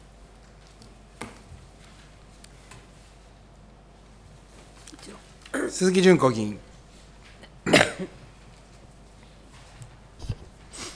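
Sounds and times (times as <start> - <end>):
speech: 5.1 - 6.7
person coughing: 7.6 - 8.2.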